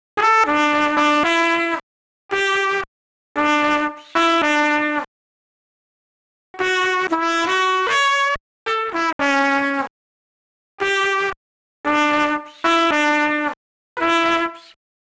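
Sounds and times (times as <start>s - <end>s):
dry trumpet: 0.2s - 2.6s, 3.4s - 5.1s, 6.6s - 9.9s, 10.8s - 14.8s.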